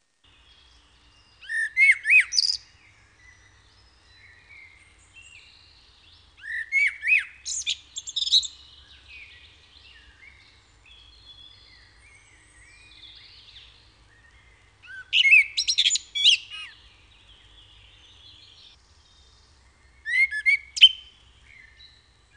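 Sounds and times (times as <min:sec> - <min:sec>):
blackbird: 0:00.3 - 0:22.3.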